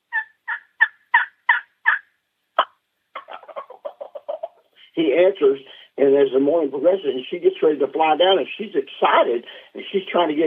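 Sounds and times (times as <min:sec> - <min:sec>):
wild turkey hen yelping: 0:00.0 - 0:04.7
speech: 0:05.0 - 0:10.4.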